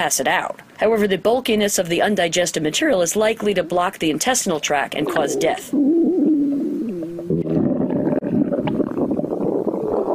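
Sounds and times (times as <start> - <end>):
speech: 0.0 - 5.9
orca stomach rumbling: 5.0 - 10.1.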